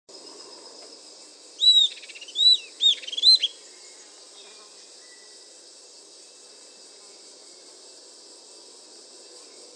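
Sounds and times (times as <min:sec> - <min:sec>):
Southern antpipit Corythopis delalandi calling: 0:01.6 - 0:03.6.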